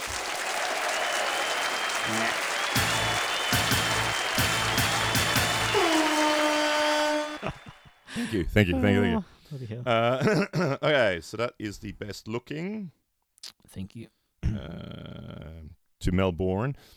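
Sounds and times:
crowd applauding with dense continuous clapping: 0.0 - 8.4
speech: 8.3 - 15.2, 16.0 - 16.9.

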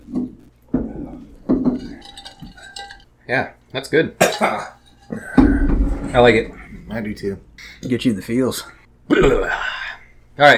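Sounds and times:
glasses clinking in a toast: 1.4 - 3.1, 4.2 - 5.4
speech: 3.3 - 5.5, 6.1 - 9.6, 10.4 - 10.5.

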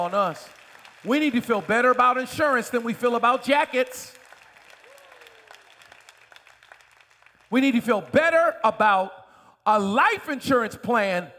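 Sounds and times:
speech: 0.0 - 4.2, 7.5 - 11.3
audience clapping: 0.0 - 8.4.

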